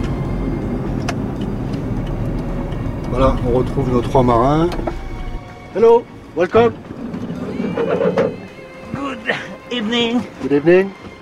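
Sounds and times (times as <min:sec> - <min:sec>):
road traffic rumble in a port area: 0:00.0 - 0:11.2
truck engines droning in a port area: 0:00.0 - 0:11.2
speech: 0:03.2 - 0:04.9, 0:05.8 - 0:06.9, 0:09.8 - 0:11.0.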